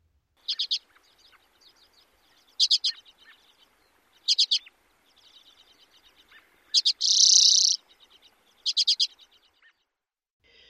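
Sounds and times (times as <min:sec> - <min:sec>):
common redpoll chatter calls: 0:00.4 - 0:09.9.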